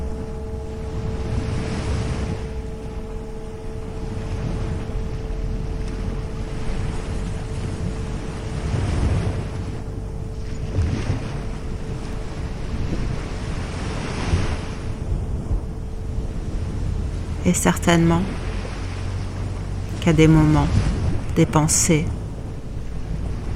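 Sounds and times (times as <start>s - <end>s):
faint steady hum: 0.0s - 23.5s
low rumble: 0.0s - 23.5s
ocean surf with breaking waves: 0.0s - 23.5s
speech: 17.5s - 18.4s, 20.0s - 22.2s.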